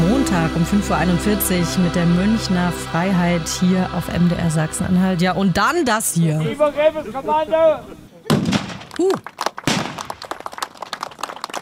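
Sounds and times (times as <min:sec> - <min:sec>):
speech: 0:00.5 - 0:08.0, 0:09.0 - 0:09.4
murmuring outdoor noise: 0:05.6 - 0:08.3
black-powder cannon shots booming at the Königspfalz in Tilleda Germany: 0:08.3 - 0:08.9.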